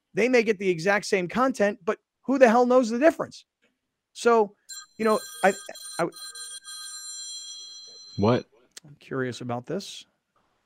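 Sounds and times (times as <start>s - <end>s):
speech: 0.2s - 3.5s, 4.2s - 6.5s, 8.2s - 10.1s
cell phone ringing with high electronic trill: 4.7s - 8.4s.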